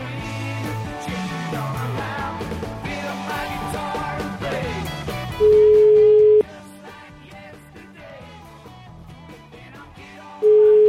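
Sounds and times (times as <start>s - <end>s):
telephone ringback tones on an outgoing call: 5.4s - 6.4s, 10.4s - 10.8s.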